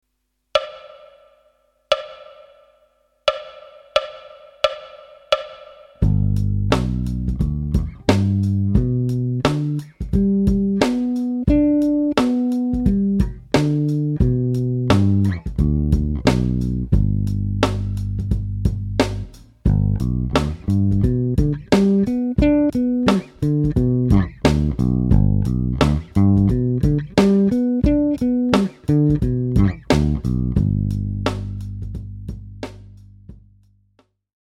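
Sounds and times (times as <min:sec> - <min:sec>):
major triads over three octaves: 0:06.0 - 0:32.6.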